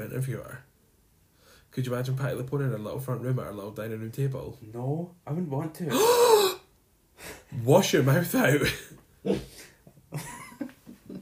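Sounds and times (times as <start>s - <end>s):
speech: 0.1s - 0.7s, 1.7s - 6.5s, 7.5s - 9.5s
person gasping loudly in shock with breathy squeaks: 5.9s - 7.5s.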